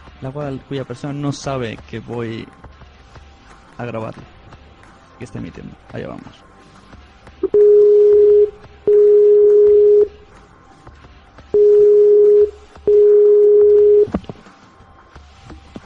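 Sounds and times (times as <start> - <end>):
speech: 0.2 - 3.2, 3.8 - 4.4, 5.2 - 6.5
telephone line tones during an outgoing call: 7.4 - 10.2, 11.6 - 14.2.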